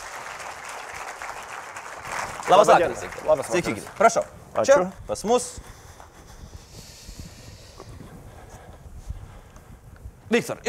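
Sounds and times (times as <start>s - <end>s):
audience applause welcoming a guest at an evening talk event: 0.0s - 4.2s
speech: 2.5s - 5.7s, 10.3s - 10.6s.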